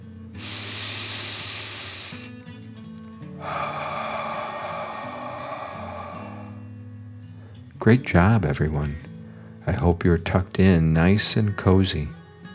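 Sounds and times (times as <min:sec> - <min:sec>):
soft music: 0:00.0 - 0:12.5
deep breath in and out during a children's bedtime relaxation exercise: 0:00.4 - 0:02.5, 0:03.2 - 0:07.7, 0:09.2 - 0:09.6
speech: 0:07.8 - 0:09.1, 0:09.7 - 0:12.2.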